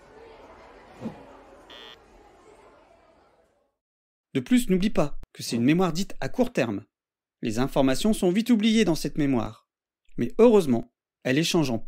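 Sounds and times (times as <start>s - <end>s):
low classroom murmur: 0.0s - 3.8s
short electronic beep: 1.7s - 2.0s
speech: 4.4s - 9.6s, 10.2s - 11.8s.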